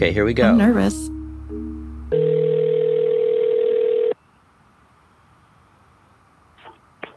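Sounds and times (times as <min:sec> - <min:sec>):
speech: 0:00.0 - 0:01.2
low hum of quieter tones: 0:00.0 - 0:03.5
telephone dial tone while phoning a number: 0:02.1 - 0:04.2.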